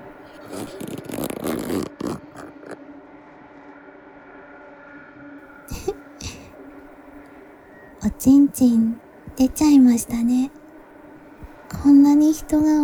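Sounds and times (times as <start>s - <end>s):
zipper being pulled down: 0.2s - 2.8s
speech: 1.7s - 2.0s, 8.1s - 10.6s, 11.8s - 12.8s.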